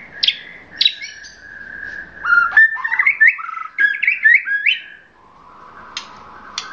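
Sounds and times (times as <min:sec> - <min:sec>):
Oriental magpie-robin singing: 0:00.0 - 0:05.1.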